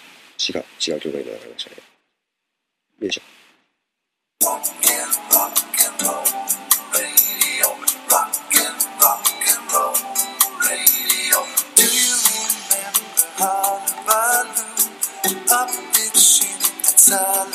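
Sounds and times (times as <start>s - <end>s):
speech: 0.4s - 1.9s, 3.0s - 3.4s
upbeat pop song with singing from an album: 4.4s - 17.5s.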